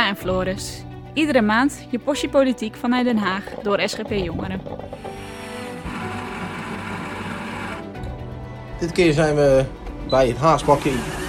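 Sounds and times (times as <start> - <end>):
speech: 0.1 - 5.3, 8.8 - 11.2
coffee machine rattling and whirring with grinding hum: 3.2 - 7.8.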